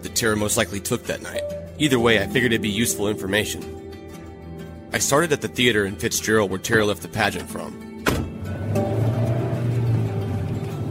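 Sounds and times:
speech: 0.2 - 3.8, 4.9 - 7.9
car engine rumble while driving: 8.0 - 10.9
road noise from a car driving: 8.1 - 10.9.

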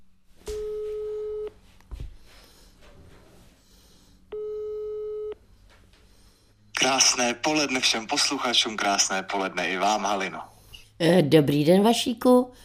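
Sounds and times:
telephone dialling tone beeps: 0.5 - 1.5, 4.3 - 5.4
speech: 6.8 - 12.6.

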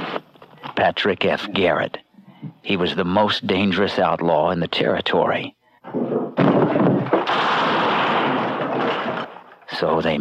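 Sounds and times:
speech: 0.8 - 2.0, 2.6 - 5.6, 9.8 - 10.1
gunshots in an Old West setting: 6.4 - 9.5.

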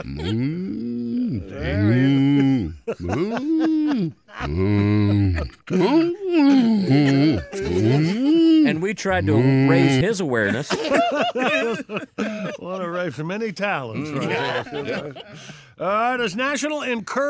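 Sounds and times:
speech: 0.0 - 8.1, 8.9 - 17.2
man imitating cow mooing: 0.0 - 10.1
laughter: 0.0 - 15.7.

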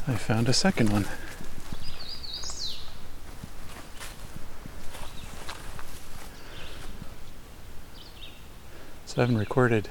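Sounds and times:
speech: 0.0 - 1.4, 9.2 - 9.8
hooded warbler singing: 0.0 - 3.5, 4.9 - 5.6, 6.3 - 9.8
crunching footsteps of person walking: 0.0 - 7.2.

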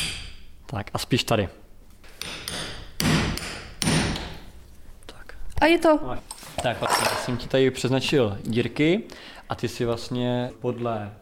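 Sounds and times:
speech: 0.7 - 1.6, 5.6 - 11.2
hammer striking a hole punch on a wooden block punching a leather belt: 2.2 - 4.3.

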